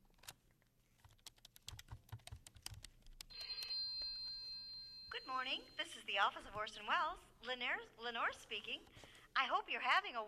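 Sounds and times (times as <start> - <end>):
rapid keyboard typing: 1.0 - 3.8
telephone ringing with a bright electronic trill: 3.3 - 6.9
speech: 5.3 - 10.2.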